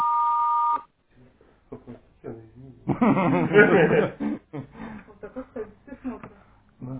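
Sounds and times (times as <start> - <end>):
loud steady answering machine beep: 0.0 - 0.9
people chuckling: 1.7 - 6.2.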